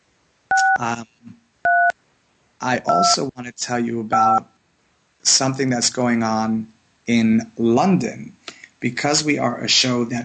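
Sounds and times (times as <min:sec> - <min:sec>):
telephone dialing tones as a call is placed: 0:00.5 - 0:00.8, 0:01.7 - 0:01.9, 0:02.9 - 0:03.2
speech: 0:00.8 - 0:01.4, 0:02.6 - 0:04.5, 0:05.2 - 0:10.2
short voiced sound: 0:02.6 - 0:03.5.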